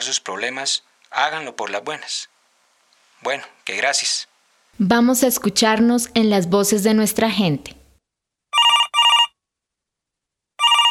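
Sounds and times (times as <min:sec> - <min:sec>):
speech: 0:00.1 - 0:02.3, 0:03.2 - 0:07.8
telephone bell ringing: 0:08.6 - 0:09.3, 0:10.6 - 0:10.9.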